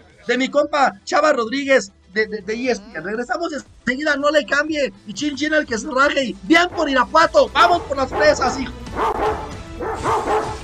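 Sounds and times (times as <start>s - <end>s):
speech: 0.2s - 10.6s
dog barking: 7.6s - 10.6s.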